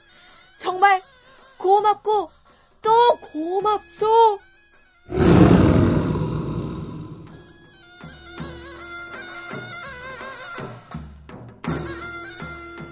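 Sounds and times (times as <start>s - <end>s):
speech: 0.6s - 4.5s, 5.1s - 5.6s
loud tiger roar: 5.1s - 7.7s.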